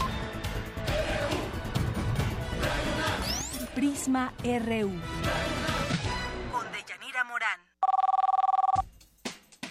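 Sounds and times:
music with voices: 0.2 - 6.8
speech: 3.8 - 5.6
telephone ringing in a radio studio booth: 7.8 - 8.8.

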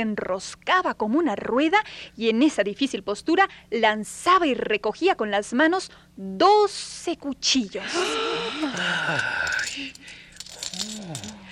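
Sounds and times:
speech: 0.0 - 10.0
copper coins tossed to a juggler clinking onto a hard surface: 8.6 - 11.5.

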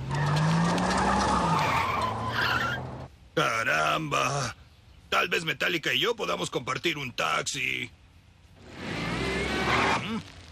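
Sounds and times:
school bus tires screeching: 0.0 - 3.1, 8.6 - 10.4
speech: 3.4 - 8.0, 9.7 - 10.4.

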